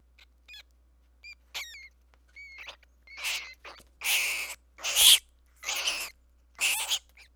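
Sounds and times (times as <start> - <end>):
rat long shrieks: 1.6 - 7.1.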